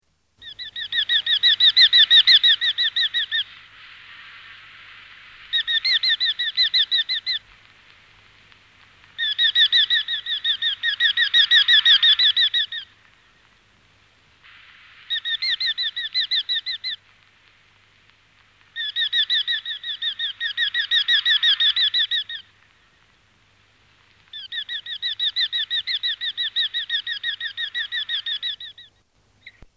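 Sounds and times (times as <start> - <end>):
Eurasian hobby: 0.4 - 7.5, 9.1 - 13.2, 14.4 - 17.1, 18.7 - 22.8, 24.3 - 29.7.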